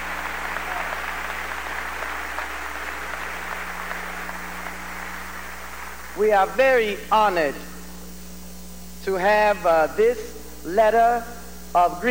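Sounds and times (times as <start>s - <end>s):
crowd applauding: 0.0s - 6.2s
low electrical hum: 0.0s - 12.0s
speech: 6.2s - 7.7s, 9.0s - 12.0s.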